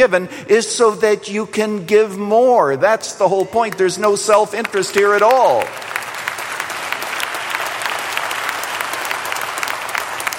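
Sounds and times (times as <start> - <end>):
speech: 0.0 - 5.9
church audience applauding during a sermon: 4.5 - 10.3.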